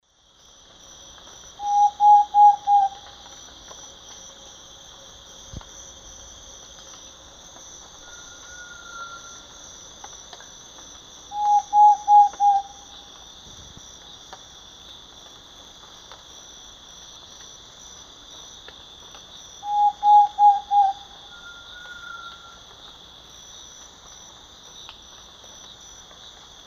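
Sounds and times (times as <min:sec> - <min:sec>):
Mytmothera campanisona song in Eastern Lowlands of South America: 0:01.6 - 0:03.2, 0:11.3 - 0:13.2, 0:19.6 - 0:22.9.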